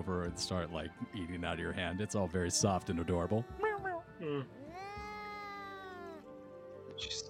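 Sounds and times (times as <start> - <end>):
speech: 0.0 - 4.6
angry cat meowing and yowling while being hand-fed meat: 2.6 - 6.4.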